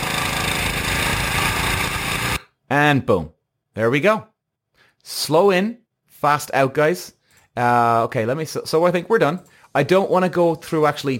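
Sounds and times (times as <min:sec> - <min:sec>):
go-kart engine at full throttle accelerating out of a bend: 0:00.0 - 0:02.4
speech: 0:02.7 - 0:04.3, 0:05.0 - 0:11.1.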